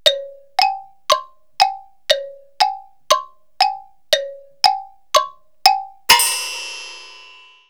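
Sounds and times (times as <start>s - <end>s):
comedic clock music: 0.0s - 7.4s.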